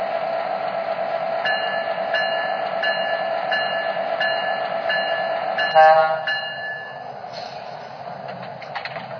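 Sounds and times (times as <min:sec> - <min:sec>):
passenger train bound for Chicago idling at Kansas City station: 0:00.0 - 0:09.1
train hiss: 0:07.2 - 0:08.2.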